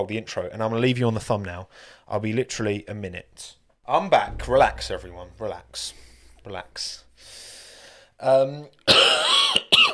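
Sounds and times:
speech: 0.0s - 7.5s, 8.2s - 9.9s
cough: 8.9s - 9.9s.

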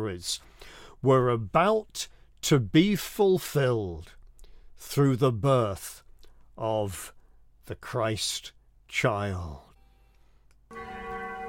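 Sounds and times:
speech: 0.0s - 4.2s, 4.8s - 6.0s, 6.6s - 9.6s
single loud strike of a mission bell: 10.7s - 11.4s.

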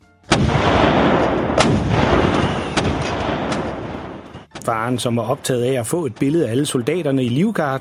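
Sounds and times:
small cannons on a quay in Denmark firing blank salute shots: 0.3s - 4.5s
speech: 4.7s - 7.7s.

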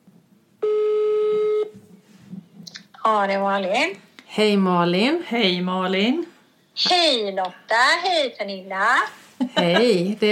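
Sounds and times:
faint noise: 0.0s - 10.3s
phone ringback tone as a call is placed: 0.6s - 1.8s
speech: 3.1s - 10.3s.

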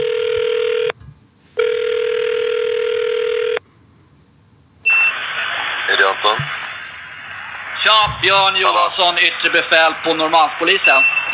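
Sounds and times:
electronic telephone ringing tone on a phone line during a prank call: 0.0s - 1.0s, 1.6s - 3.6s, 4.8s - 7.0s
speech: 8.3s - 11.3s.

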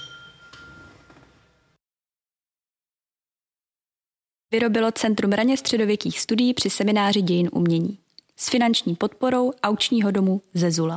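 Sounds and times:
glasses clinking together in a toast: 0.0s - 1.7s
speech: 4.5s - 10.9s.

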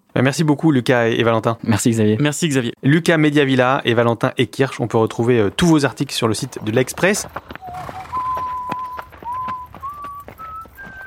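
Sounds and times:
speech: 0.2s - 8.0s
horse hooves clip-clopping: 5.6s - 11.0s
person whistling a simple tune: 7.6s - 11.0s.

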